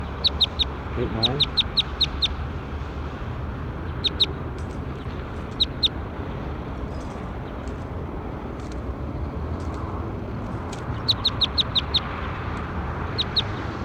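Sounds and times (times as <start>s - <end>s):
high bird chirps: 0.0s - 2.4s, 4.0s - 6.0s, 10.9s - 12.1s, 13.1s - 13.6s
low rumble: 0.0s - 13.8s
speech: 1.0s - 2.2s.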